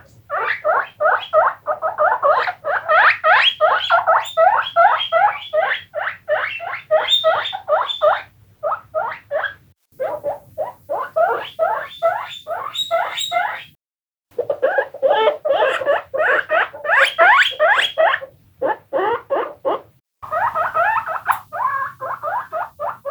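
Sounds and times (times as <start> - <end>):
guinea pig squealing: 0.0 - 13.8, 14.4 - 23.0.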